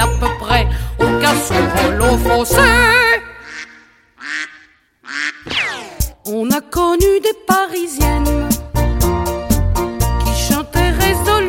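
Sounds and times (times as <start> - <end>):
dense musical backing: 0.0 - 3.2, 6.1 - 11.4
speech: 1.4 - 3.0
duck quacking: 3.3 - 6.1.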